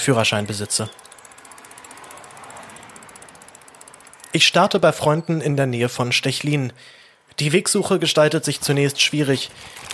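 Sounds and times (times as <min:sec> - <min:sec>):
speech: 0:00.0 - 0:01.1, 0:04.4 - 0:09.9
bicycle freewheel ratchet clicking while riding: 0:00.0 - 0:05.0.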